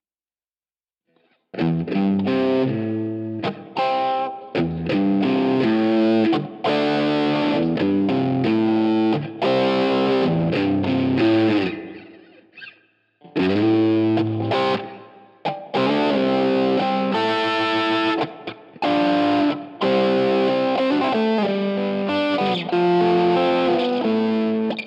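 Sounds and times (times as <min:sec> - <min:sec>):
distorted electric guitar through tube amp and tube drive, middle and bridge pickups: 0:01.6 - 0:24.8.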